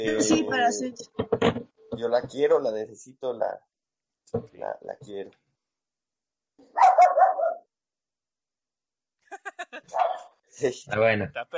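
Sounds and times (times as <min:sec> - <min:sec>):
speech: 0:00.0 - 0:03.7, 0:04.3 - 0:05.4, 0:09.7 - 0:11.5
dog barking and yipping: 0:06.7 - 0:07.7, 0:09.9 - 0:10.4
laughter: 0:09.3 - 0:10.0.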